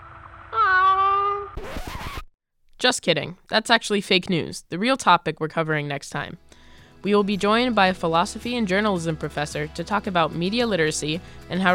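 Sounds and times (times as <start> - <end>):
cat meowing: 0.6 - 1.5
speech: 2.8 - 11.7.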